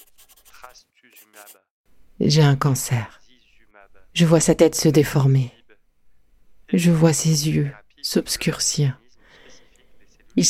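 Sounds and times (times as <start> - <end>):
pen scratching on paper: 0.0 - 1.6
speech: 0.7 - 3.2, 3.8 - 5.6, 6.7 - 9.0.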